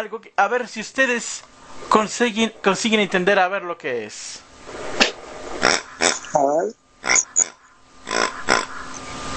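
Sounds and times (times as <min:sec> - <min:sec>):
speech: 0:00.0 - 0:05.0, 0:06.3 - 0:07.3
noise: 0:00.0 - 0:07.2
pig oinking: 0:05.6 - 0:09.0.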